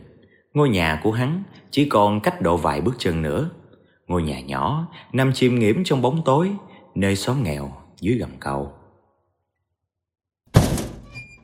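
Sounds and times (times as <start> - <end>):
speech: 0.5 - 8.8
door banging open at a small house in a poor settlement under a bridge: 10.5 - 11.4.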